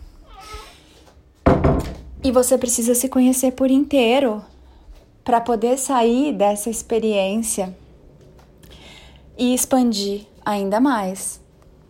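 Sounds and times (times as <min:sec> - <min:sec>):
cat meowing softly: 0:00.2 - 0:00.8
loud thumps on a nearby door: 0:01.4 - 0:02.1
speech: 0:01.8 - 0:04.6, 0:05.3 - 0:07.8, 0:09.4 - 0:11.4.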